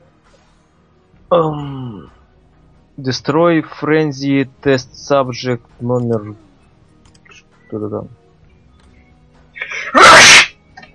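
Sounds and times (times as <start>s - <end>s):
speech: 1.3s - 2.2s, 3.0s - 6.4s, 7.7s - 8.2s
loud sneeze: 9.6s - 10.5s.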